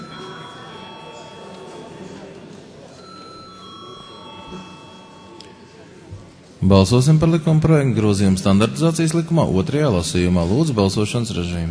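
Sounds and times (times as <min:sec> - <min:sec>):
bell ringing in a parliament chamber before a vote: 0:00.0 - 0:06.2
dense murmur of voices in a parliament chamber: 0:00.0 - 0:11.6
speech: 0:06.6 - 0:11.6.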